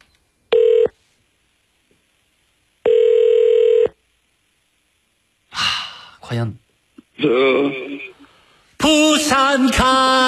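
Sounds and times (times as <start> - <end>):
telephone ringback tone over the line: 0.5 - 0.9, 2.8 - 4.0
speech: 6.3 - 6.6, 7.2 - 8.2, 8.8 - 10.2.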